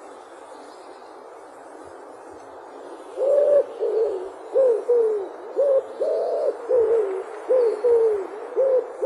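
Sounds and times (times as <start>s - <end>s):
quiet hiss: 0.0s - 9.0s
Common wood pigeon song of mellow low coos: 3.1s - 9.0s.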